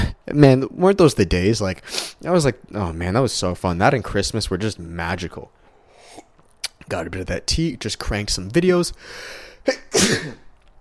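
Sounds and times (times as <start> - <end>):
speech: 0.3 - 5.6, 6.9 - 10.4
person sneezing: 5.9 - 6.4, 9.7 - 10.5.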